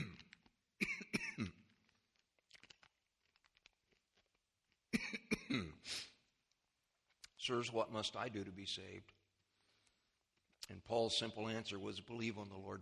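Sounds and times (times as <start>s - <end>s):
man coughing and clearing his throat with a cough drop in his mouth: 0.0s - 1.8s, 4.9s - 6.1s
speech: 1.4s - 1.6s, 5.5s - 6.0s, 7.4s - 9.2s, 10.7s - 12.8s.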